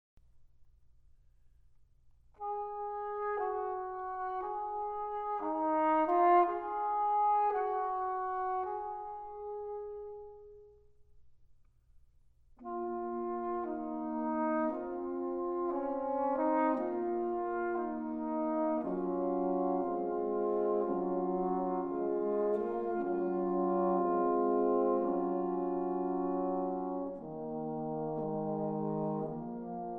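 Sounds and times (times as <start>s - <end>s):
melancholy brass quintet: 2.2s - 11.3s, 12.4s - 29.9s.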